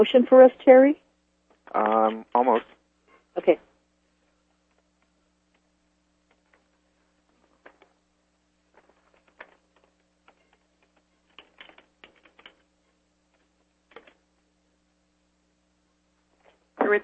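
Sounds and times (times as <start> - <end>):
speech: 0.0 - 1.0, 1.7 - 2.8, 3.4 - 3.7, 16.9 - 17.0
steady low electrical hum: 0.0 - 17.0
typing on a computer keyboard: 8.8 - 12.7, 13.3 - 14.2.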